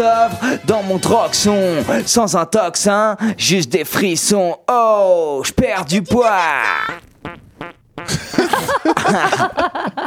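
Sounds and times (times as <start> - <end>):
speech: 0.0 - 7.1, 8.1 - 10.0
loud buzzy fart: 6.7 - 8.3
giggling laughter: 8.1 - 10.0.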